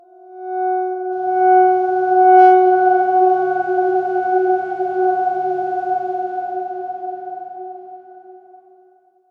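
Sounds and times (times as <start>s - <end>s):
dark swarm tone at F sharp 4: 1.2s - 7.8s.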